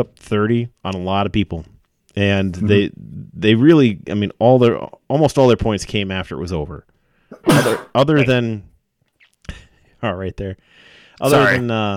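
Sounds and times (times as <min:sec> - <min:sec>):
speech: 0:00.0 - 0:08.7, 0:09.5 - 0:11.9
loud sneeze: 0:07.3 - 0:08.0, 0:11.2 - 0:11.6.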